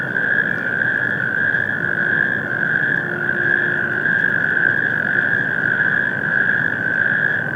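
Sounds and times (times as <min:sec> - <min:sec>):
natterjack toads trilling in chorus on industrial wasteland: 0:00.2 - 0:07.4
short low tone: 0:01.7 - 0:05.6.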